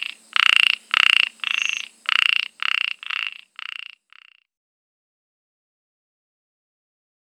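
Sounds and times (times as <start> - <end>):
Microhyla ornata ornate narrow-mouthed frog calling: 0.0 - 4.5.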